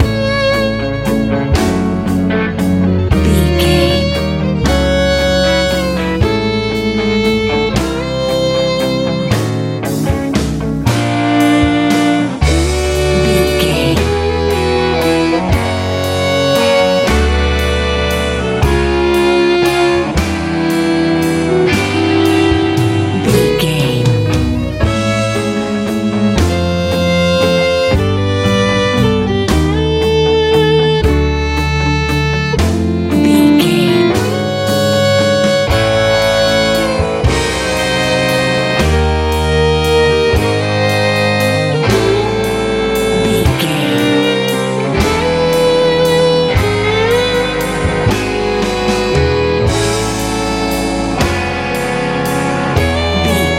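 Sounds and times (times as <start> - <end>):
sunny easy pop music: 0.0 - 53.5.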